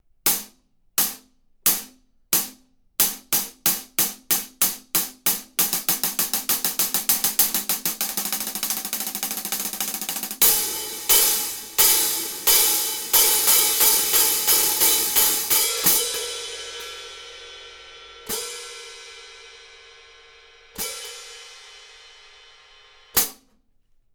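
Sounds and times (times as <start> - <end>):
15in classic regular hi-hat cymbals: 0.3 - 23.4.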